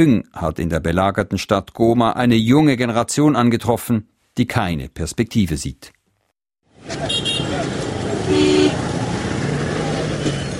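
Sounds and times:
speech: 0.0 - 6.0, 6.9 - 7.3
dense street traffic with motorcycles: 6.7 - 10.5
short horn toots: 6.9 - 8.8.

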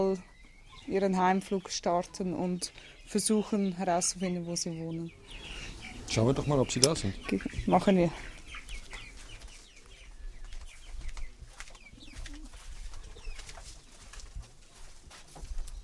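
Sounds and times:
speech: 0.0 - 0.3, 0.9 - 8.3
scattered bird chirps: 0.0 - 13.9
pigeons cooing in an aviary: 5.1 - 9.8, 11.8 - 13.4.

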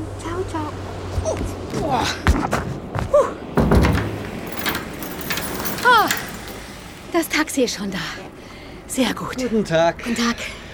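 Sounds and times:
speech: 0.5 - 2.6, 7.1 - 8.4, 9.0 - 10.6
door shutting with a thud: 3.6 - 6.9
keys jangling: 3.6 - 7.1
rustling: 3.9 - 7.0.

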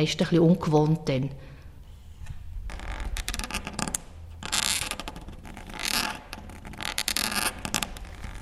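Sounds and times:
speech: 0.0 - 1.5
quill pen scratching on paper while writing in ink: 2.8 - 8.4.

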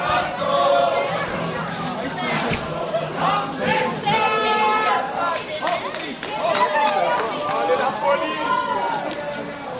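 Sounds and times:
small choir singing a Swiss folk song: 0.0 - 5.4
busy murmur of people: 0.0 - 9.7.

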